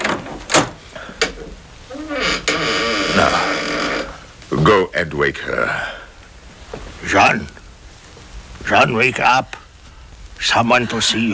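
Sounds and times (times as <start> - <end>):
door creaking and scraping open: 0.0 - 4.3
faint movement noise: 0.0 - 11.3
speech: 4.5 - 6.0, 7.0 - 7.6, 8.7 - 9.6, 10.4 - 11.3.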